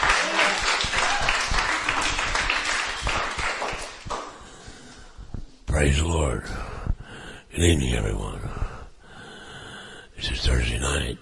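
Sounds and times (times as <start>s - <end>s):
shouts: 0.0s - 1.9s
large crowd applauding: 0.0s - 4.4s
speech: 5.8s - 6.7s, 7.6s - 8.6s, 10.2s - 11.1s.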